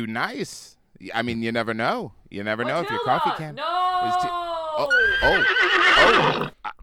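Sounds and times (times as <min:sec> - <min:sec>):
speech: 0:00.0 - 0:06.8
horse snorting: 0:05.1 - 0:06.6.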